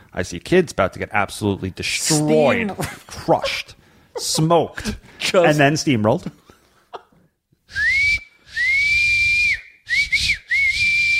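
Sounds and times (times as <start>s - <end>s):
speech: 0.2s - 6.4s
person whistling loudly with breathy airy edge: 7.7s - 11.1s.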